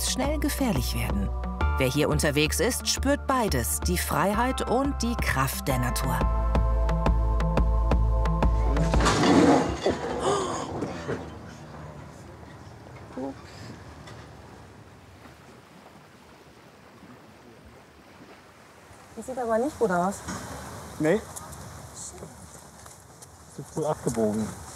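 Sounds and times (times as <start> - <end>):
wind: 0.0 - 24.7
speech: 0.2 - 6.4, 19.2 - 21.4, 23.8 - 24.6
sailboat rear railing slamming against harbour facility on a lake: 8.8 - 12.1
water splashing on a lake: 13.3 - 24.7.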